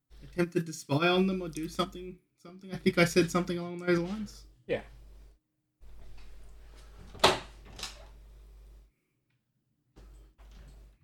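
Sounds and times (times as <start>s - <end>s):
speech: 0.4s - 5.0s
door opening to let a dog in: 6.0s - 8.2s
door handle and frame noise: 7.0s - 8.1s.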